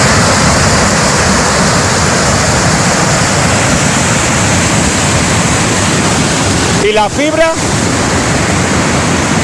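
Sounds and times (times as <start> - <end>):
storm floodwater pouring off a road like a waterfall in the Fornela Valley: 0.0 - 9.4
speech: 6.9 - 7.8.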